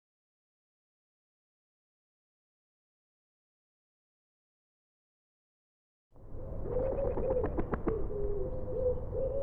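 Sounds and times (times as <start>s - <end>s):
common wood pigeon giving soft low cooing notes: 6.4s - 9.4s.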